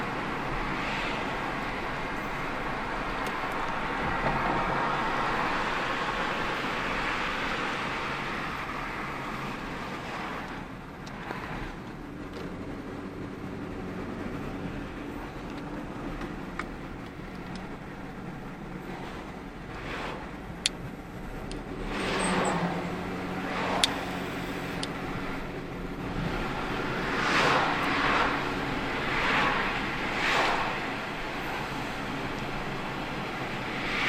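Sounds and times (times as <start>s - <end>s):
car engine: 0.0s - 34.0s
other vehicles passing on a road: 0.0s - 34.0s.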